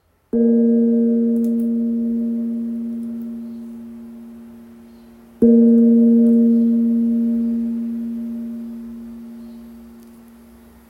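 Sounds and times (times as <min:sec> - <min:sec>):
Burmese gong in A sharp weighing 800g: 0:00.4 - 0:10.4.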